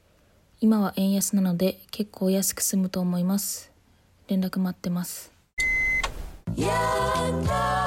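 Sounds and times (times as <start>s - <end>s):
speech: 0.6s - 3.7s, 4.3s - 5.3s, 6.6s - 7.7s
quick electronic beep: 5.6s - 6.4s.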